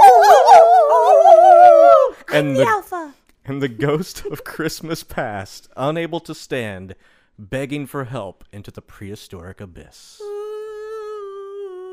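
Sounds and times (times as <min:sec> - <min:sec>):
pack of wolves howling: 0:00.0 - 0:02.7
speech: 0:02.4 - 0:10.3.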